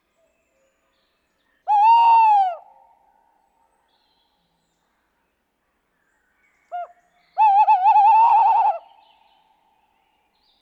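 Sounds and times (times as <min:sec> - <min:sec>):
tawny owl hooting: 0:07.4 - 0:08.8.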